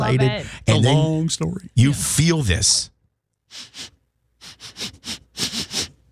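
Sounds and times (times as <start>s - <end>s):
speech: 0.1s - 2.9s, 3.5s - 3.9s
person sniffing sharply through the nose: 3.5s - 6.1s.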